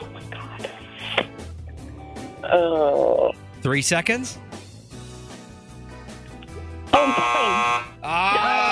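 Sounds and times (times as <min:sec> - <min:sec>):
speech: 0:02.5 - 0:04.4
quiz game time-up buzzer: 0:06.9 - 0:08.0
voices exclaiming: 0:08.0 - 0:08.7.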